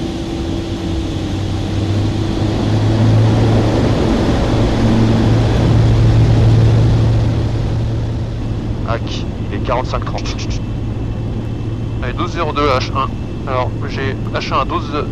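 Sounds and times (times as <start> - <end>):
aircraft engine droning before takeoff: 0.0 - 15.1
speech: 9.7 - 10.5, 12.2 - 15.1.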